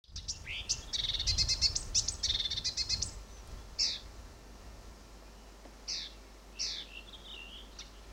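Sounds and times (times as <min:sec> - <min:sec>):
marsh warbler singing scratchy chirps and trills at Fylingen: 0:00.0 - 0:04.1, 0:05.9 - 0:08.1.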